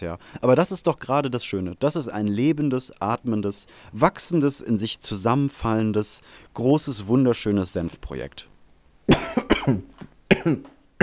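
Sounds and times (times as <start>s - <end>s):
speech: 0.0s - 8.5s, 9.1s - 10.7s
harsh wet hacking coughing: 9.1s - 11.0s.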